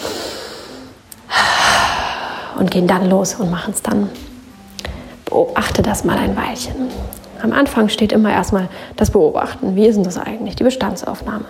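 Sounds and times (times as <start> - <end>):
person taking a deep breath in and out: 0.0 - 2.6
speech: 2.6 - 4.3, 5.4 - 11.4.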